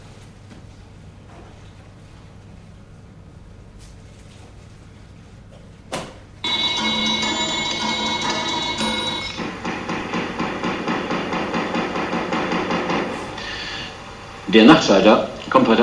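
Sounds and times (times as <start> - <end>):
craftsmen hammering on metal preparing an exhibition: 6.4 - 13.6
speech: 14.5 - 15.8.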